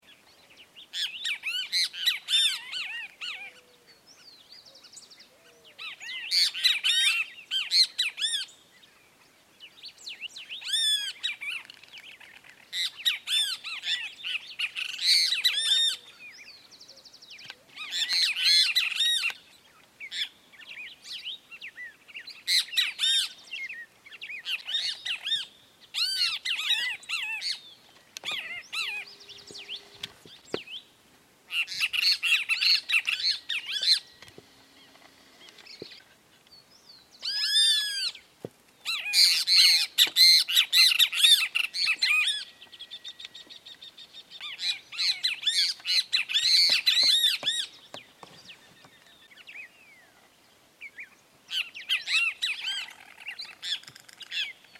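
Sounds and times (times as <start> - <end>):
two great kiskadee birds singing: 0.0 - 54.7.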